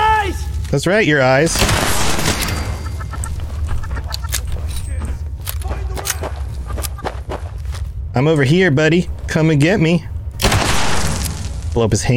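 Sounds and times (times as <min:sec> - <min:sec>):
speech: 0:00.7 - 0:01.9, 0:08.2 - 0:10.1, 0:11.8 - 0:12.1
steady low rumble: 0:01.4 - 0:12.1
sharp clicks: 0:02.4 - 0:07.2
chickens clucking: 0:02.6 - 0:04.8, 0:06.3 - 0:07.6
shuffling steps: 0:03.0 - 0:09.4.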